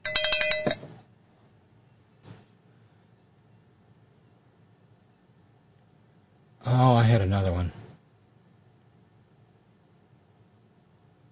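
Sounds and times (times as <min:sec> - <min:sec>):
bright metallic cowbell clanks: 0:00.0 - 0:00.9
faint rustle: 0:00.9 - 0:03.6
speech: 0:07.2 - 0:07.7.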